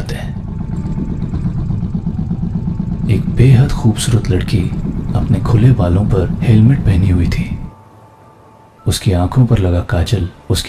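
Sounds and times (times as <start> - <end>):
Bullet motorcycle engine rumbling as the bike comes to a stop: 0.0 - 7.8
speech: 3.4 - 7.6, 8.9 - 10.6.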